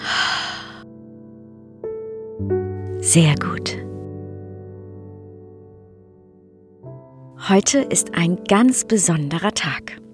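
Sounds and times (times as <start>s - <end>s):
slow deep exhale during a guided breathing exercise: 0.0s - 0.9s
speech: 2.4s - 3.8s, 7.5s - 10.0s.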